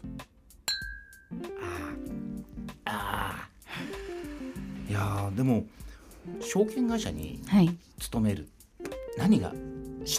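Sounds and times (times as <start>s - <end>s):
glasses clinking together in a toast: 0.7s - 1.3s
speech: 5.0s - 8.6s, 9.2s - 10.1s.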